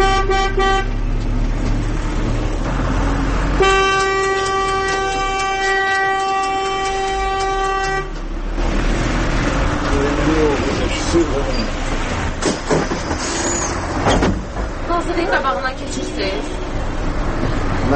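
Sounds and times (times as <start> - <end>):
vehicle horns honking in traffic: 0.0 - 1.0, 3.5 - 8.3, 15.7 - 16.9
traffic rumble: 0.0 - 17.9.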